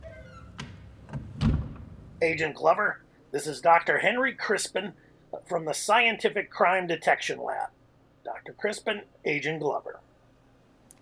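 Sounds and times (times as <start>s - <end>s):
heavy door swinging shut with dull thud: 0.0s - 2.2s
speech: 2.2s - 10.1s.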